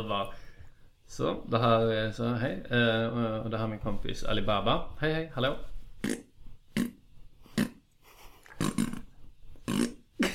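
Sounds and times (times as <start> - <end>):
speech: 0.0 - 0.4, 1.1 - 6.3
short raspy farting noises: 6.0 - 10.3.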